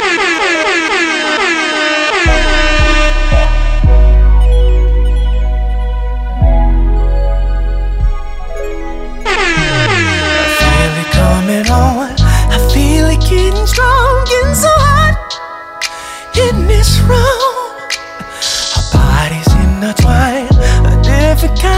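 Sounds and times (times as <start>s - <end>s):
loud blaring air horn blasts: 0.0s - 4.1s, 9.2s - 12.6s
music: 0.0s - 21.7s.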